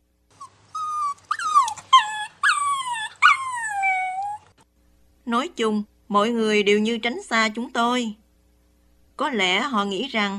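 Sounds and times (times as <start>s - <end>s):
dog whimpering and howling: 0.3s - 4.6s
speech: 5.3s - 8.2s, 9.2s - 10.3s.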